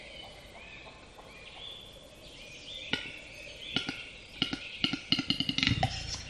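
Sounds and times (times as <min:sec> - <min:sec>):
Western capercaillie deep pop: 0:02.9 - 0:06.1
Western capercaillie display clicks quickening into a drum-roll: 0:03.8 - 0:06.1.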